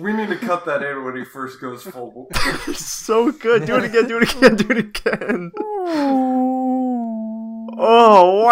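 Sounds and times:
speech: 0:00.0 - 0:06.4, 0:07.7 - 0:08.5
laughter: 0:02.3 - 0:06.0
person imitating a whale call: 0:05.6 - 0:08.4.

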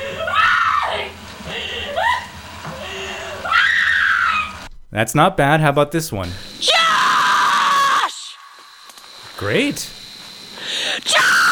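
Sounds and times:
woman screaming in a horror film clip: 0:00.0 - 0:01.2, 0:01.8 - 0:02.3, 0:03.0 - 0:04.6, 0:06.6 - 0:08.5, 0:11.1 - 0:11.4
woman's gasping breaths: 0:02.7 - 0:03.4, 0:10.5 - 0:11.1
speech: 0:05.0 - 0:06.7, 0:09.4 - 0:10.0.

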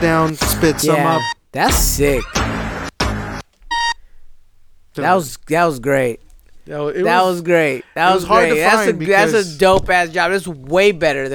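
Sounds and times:
speech: 0:00.0 - 0:02.4, 0:05.0 - 0:11.3
sustained electronic beep in a beat: 0:00.8 - 0:01.4.

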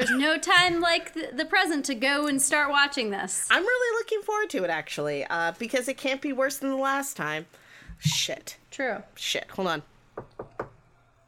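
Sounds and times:
speech: 0:00.1 - 0:10.6
knocking on wood: 0:10.2 - 0:10.8.

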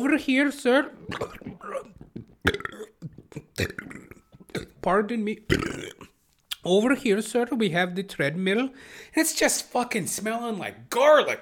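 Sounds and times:
speech: 0:00.0 - 0:02.9, 0:03.6 - 0:03.9, 0:04.8 - 0:06.0, 0:06.6 - 0:11.4
man's voice imitating a man burping: 0:00.8 - 0:04.8, 0:05.5 - 0:06.2.

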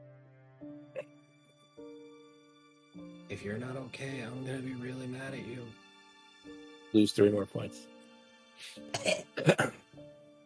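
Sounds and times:
speech: 0:03.3 - 0:05.8, 0:06.9 - 0:07.9, 0:08.6 - 0:09.8
harsh throaty coughs of someone coughing up blood: 0:08.9 - 0:09.8.

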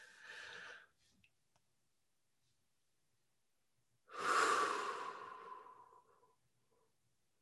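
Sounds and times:
group deep breathing at the start of a prayer practice: 0:00.0 - 0:00.9, 0:04.1 - 0:06.4.

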